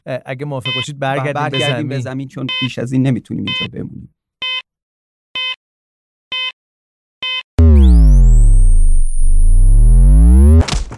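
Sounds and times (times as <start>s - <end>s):
speech: 0.0s - 4.2s
buzzer alarm beeping warning of low fuel: 0.7s - 0.9s, 1.5s - 1.8s, 4.4s - 4.7s, 5.4s - 5.6s, 6.3s - 6.6s, 7.2s - 10.2s.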